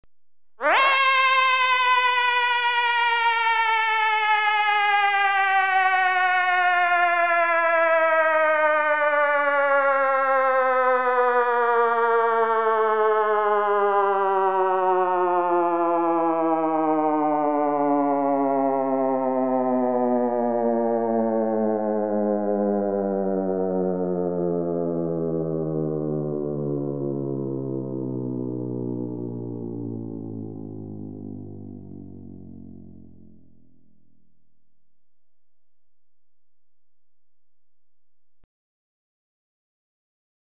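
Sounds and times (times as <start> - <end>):
descending electronically generated siren: 0.6 - 38.5.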